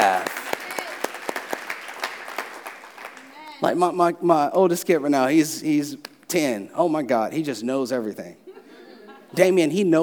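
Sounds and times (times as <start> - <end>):
audience applause: 0.0 - 3.6
speech: 3.6 - 8.4, 9.3 - 10.0.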